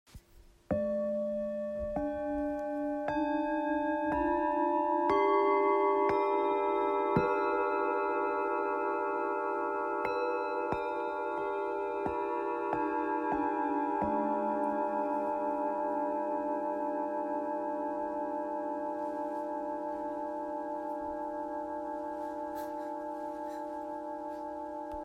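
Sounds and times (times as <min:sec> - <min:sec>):
singing bowl from a set of seven sensory bowls: 0:00.7 - 0:25.0.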